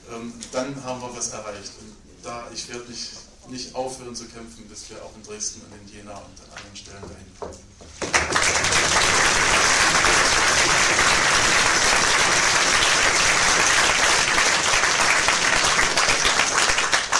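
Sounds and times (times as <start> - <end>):
speech: 0.1 - 9.6
large audience applause: 8.0 - 17.1.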